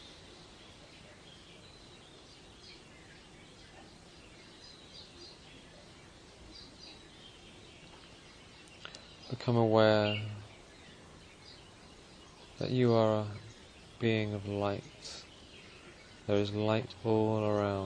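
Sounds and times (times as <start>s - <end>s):
small birds chirping: 0.0s - 17.8s
steady hissing outdoor background: 0.0s - 17.8s
speech: 9.5s - 10.3s, 12.6s - 13.4s, 14.0s - 15.2s, 16.3s - 17.8s.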